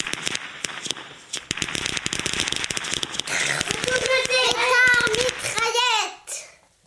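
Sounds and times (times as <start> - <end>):
string of firecrackers popping: 0.0 - 5.9
children shouting and squealing excitedly: 3.6 - 6.5.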